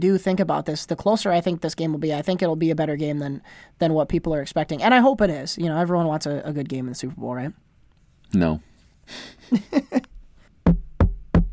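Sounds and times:
speech: 0.0s - 7.7s, 8.3s - 10.1s
knocking on a door: 10.7s - 11.5s.

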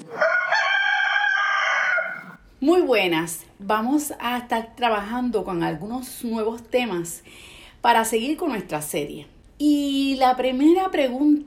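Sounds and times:
rooster crowing: 0.0s - 2.4s
speech: 2.6s - 11.4s.

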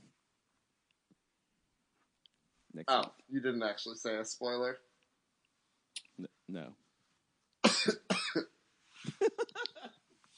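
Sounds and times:
speech: 2.8s - 4.9s, 6.2s - 6.8s, 7.8s - 8.5s
person coughing: 7.6s - 8.5s.

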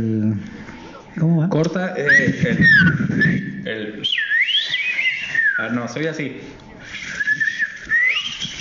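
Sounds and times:
speech: 0.0s - 4.2s, 5.6s - 7.0s
person whistling an imitation of a knife sharpener's pan flute: 2.1s - 5.8s, 6.9s - 8.5s.

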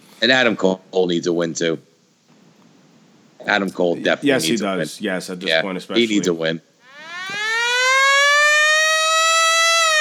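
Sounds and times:
speech: 0.2s - 1.9s, 3.4s - 6.7s
civil defense siren wailing: 6.8s - 9.9s.

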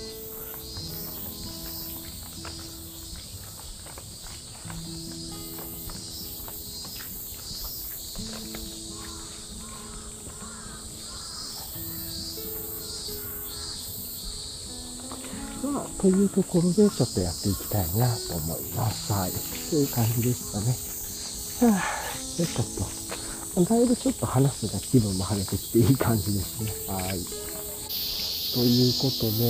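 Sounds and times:
cicadas droning: 0.0s - 29.4s
speech: 16.0s - 20.9s, 21.6s - 23.0s, 23.6s - 27.5s, 28.5s - 29.4s.

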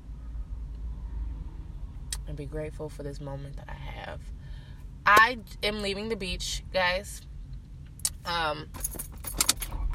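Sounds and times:
car engine low rumble: 0.0s - 9.9s
speech: 2.3s - 4.4s, 5.1s - 7.3s, 8.2s - 9.1s
car keys jangling: 8.7s - 9.9s.

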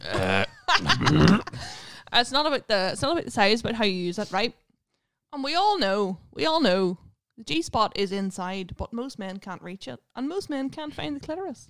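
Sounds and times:
loud strained vocal noise: 0.0s - 1.5s
short throaty burp: 0.0s - 1.6s
speech: 1.1s - 1.6s, 2.2s - 4.6s, 5.3s - 11.6s.

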